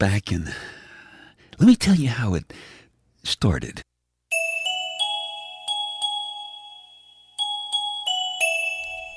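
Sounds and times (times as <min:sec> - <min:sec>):
speech: 0:00.0 - 0:00.8, 0:01.6 - 0:03.9
bells ringing: 0:04.3 - 0:09.1.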